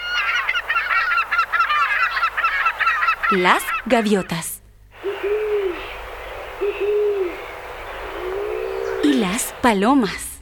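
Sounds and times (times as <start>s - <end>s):
chorus of ducks calling with nasal honks: 0.0s - 4.4s, 5.0s - 9.8s
speech: 3.3s - 4.6s, 9.3s - 10.3s.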